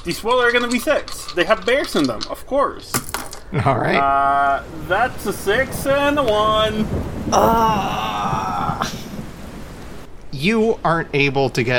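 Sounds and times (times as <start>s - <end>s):
speech: 0.0s - 8.1s, 10.4s - 11.7s
steady rain in a storm coming in from the sea: 0.0s - 11.7s
low rolling thunder in a storm coming in from the sea: 3.5s - 10.1s.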